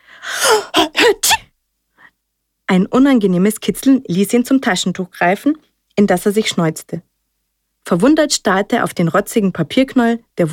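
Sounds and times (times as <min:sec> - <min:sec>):
strong human sneeze: 0:00.3 - 0:01.5
speech: 0:02.7 - 0:07.1, 0:07.9 - 0:10.5.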